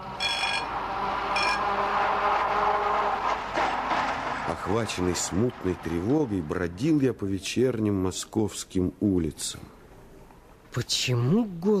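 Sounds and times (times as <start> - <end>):
bright tram bell ringing: 0.0 - 1.8
tram rolling along rails: 0.0 - 7.6
speech: 4.6 - 9.8, 10.8 - 11.7.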